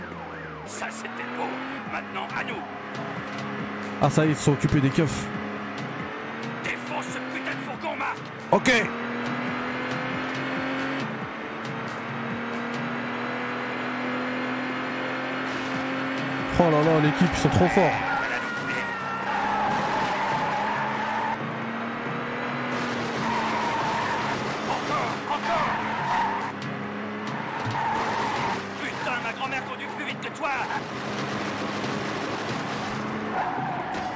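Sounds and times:
car tires squealing as it skids: 0.0 - 13.4, 15.3 - 34.1
car engine roaring and revving as it accelerates: 0.0 - 34.1
speech: 0.7 - 5.4, 8.5 - 9.0, 16.8 - 18.1.

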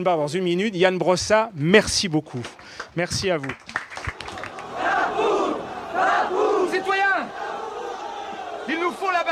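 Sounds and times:
speech: 0.0 - 3.8
large crowd shouting and roaring at the Place de la Bastille: 4.4 - 9.3.

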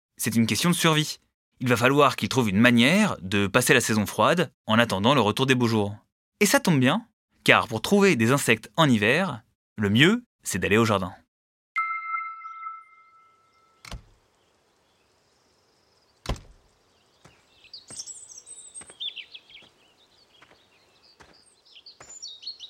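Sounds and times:
speech: 0.2 - 11.2
bright ringing chime: 11.8 - 13.8
male European robin singing: 11.9 - 22.6.

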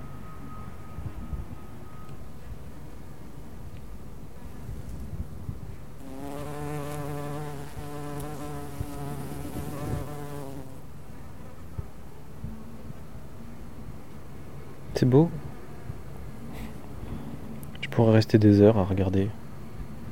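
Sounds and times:
bees, bumblebees and flies buzzing while feeding on nectar: 6.0 - 10.9
speech: 15.0 - 15.4, 18.0 - 19.4.

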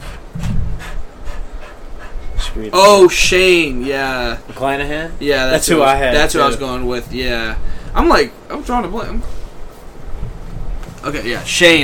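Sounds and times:
dog panting: 0.0 - 2.7
speech: 2.6 - 9.4, 11.0 - 11.8.

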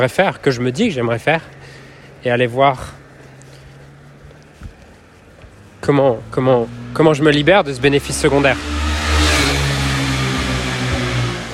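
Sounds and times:
speech: 0.0 - 3.0, 5.8 - 8.8
broadband rush of motorcycle exhaust noise: 0.0 - 11.5
motorcycle passing by with engine revving: 5.6 - 11.5.

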